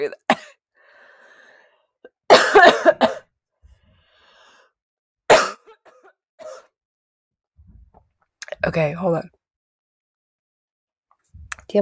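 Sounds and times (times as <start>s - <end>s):
speech: 0.0s - 0.2s, 8.6s - 9.4s
person coughing: 0.3s - 0.6s, 2.3s - 3.2s, 5.3s - 6.7s.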